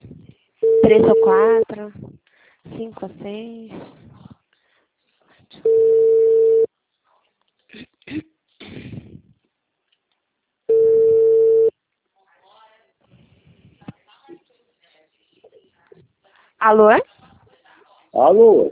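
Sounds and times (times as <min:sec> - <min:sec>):
soft scattered noises: 0:00.0 - 0:11.1, 0:11.7 - 0:18.2
electronic telephone tones after a dropped call: 0:00.6 - 0:01.6, 0:05.7 - 0:06.7, 0:10.7 - 0:11.7
speech: 0:00.8 - 0:02.1, 0:02.7 - 0:04.0, 0:16.7 - 0:17.1, 0:18.2 - 0:18.7.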